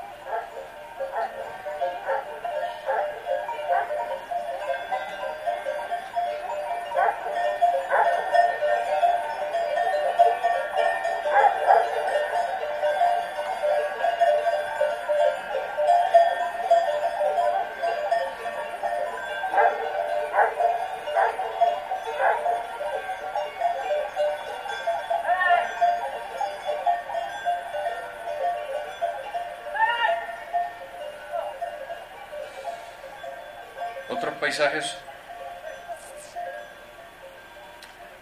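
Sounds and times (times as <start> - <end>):
tuned cowbells clanking on a flock of sheep: 0.0 - 38.2
speech: 34.6 - 35.0.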